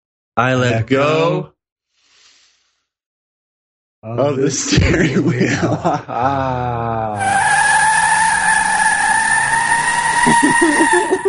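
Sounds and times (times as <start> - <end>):
speech: 0.4 - 1.5, 4.0 - 7.6, 10.3 - 11.2
laughter: 4.3 - 7.3, 10.2 - 11.2
Camaro engine roar: 6.7 - 11.2
car tires squealing in a skid on a superhighway: 6.7 - 11.2.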